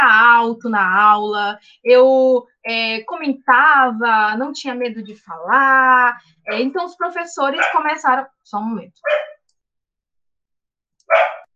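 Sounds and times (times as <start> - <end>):
speech: 0.4 - 9.4
harsh raspy dog bark in a backyard: 7.6 - 7.8, 9.0 - 9.4, 11.1 - 11.5.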